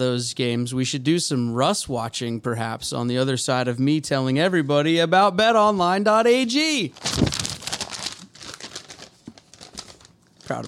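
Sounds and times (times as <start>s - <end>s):
speech: 0.0s - 7.3s, 10.5s - 10.6s
paper being crumpled: 7.0s - 10.6s.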